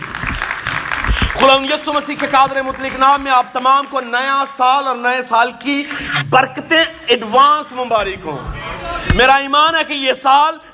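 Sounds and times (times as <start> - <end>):
crowd applauding with many hands clapping: 0.0 - 4.1
speech: 1.4 - 10.7
voices mixed into crowd applause: 7.9 - 9.9.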